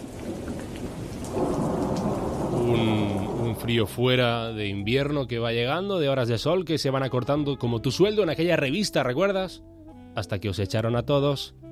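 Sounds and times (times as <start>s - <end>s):
steady rain: 0.0s - 4.9s
deep rumble: 1.4s - 5.8s
speech: 3.6s - 11.7s.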